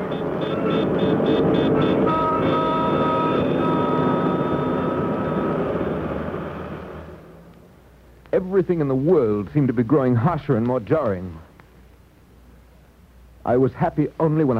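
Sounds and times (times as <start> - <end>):
whining screeching tone: 0.0 - 7.5
subway train rumbling: 0.0 - 7.6
speech: 8.4 - 11.5, 13.5 - 14.5.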